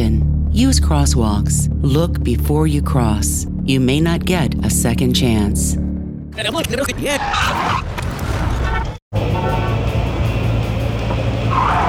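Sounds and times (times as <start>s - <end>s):
speech: 0.6s - 8.0s
car tires skidding and screeching on a street: 6.9s - 11.8s
car engine roaring: 9.1s - 11.8s.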